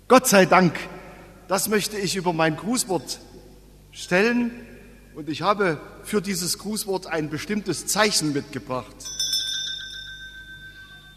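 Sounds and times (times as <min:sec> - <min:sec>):
speech: 0:00.1 - 0:09.2
small hand bell ringing: 0:09.0 - 0:11.1.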